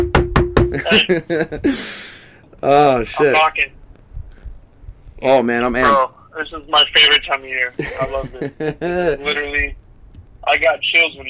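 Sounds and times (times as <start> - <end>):
quick knocks on a wooden surface: 0.0 - 0.8
speech: 0.7 - 3.8, 5.2 - 9.8, 10.5 - 11.2
laughter: 0.8 - 2.0, 7.8 - 9.5.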